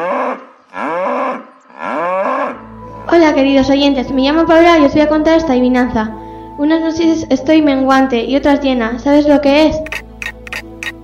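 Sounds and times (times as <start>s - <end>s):
cow mooing: 0.0s - 2.6s
speech: 3.3s - 9.8s.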